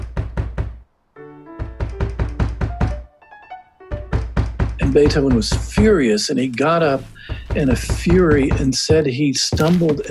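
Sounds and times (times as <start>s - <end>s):
fist pounding heavily on a door: 0.0s - 0.8s, 1.6s - 3.0s, 3.9s - 6.0s, 7.3s - 9.0s
sustained musical tones: 1.2s - 4.2s
speech: 4.9s - 10.0s.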